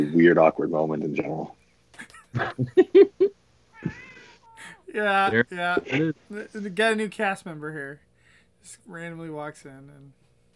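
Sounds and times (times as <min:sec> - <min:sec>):
speech: 0:00.0 - 0:04.0, 0:04.9 - 0:10.2
laughter: 0:02.0 - 0:06.1
cat meowing: 0:03.7 - 0:06.0.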